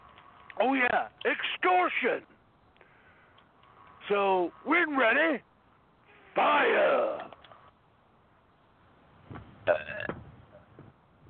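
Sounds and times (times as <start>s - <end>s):
speech: 0.6s - 2.3s, 4.1s - 5.5s, 6.4s - 7.3s
person belching: 9.7s - 10.1s.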